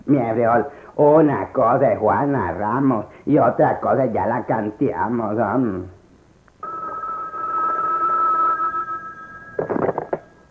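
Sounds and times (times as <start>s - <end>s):
speech: 0.1s - 6.0s
telephone ringing with a bright electronic tone: 6.6s - 10.5s.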